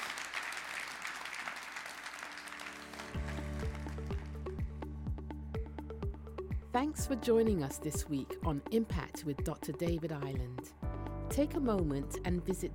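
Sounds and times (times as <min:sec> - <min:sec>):
large crowd applauding at the close of a sermon: 0:00.0 - 0:04.7
rhythmic music with a pulsing bass beat: 0:03.2 - 0:12.7
speech: 0:06.8 - 0:12.7.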